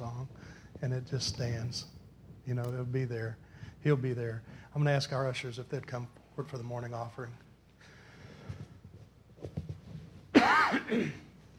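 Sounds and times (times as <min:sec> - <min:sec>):
speech: 0:00.8 - 0:07.4
person coughing: 0:10.4 - 0:11.3.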